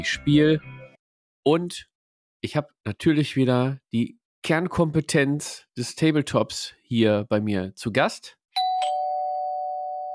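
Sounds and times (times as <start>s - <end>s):
speech: 0.0s - 0.7s, 1.4s - 8.4s
electronic doorbell ringing: 8.6s - 10.1s.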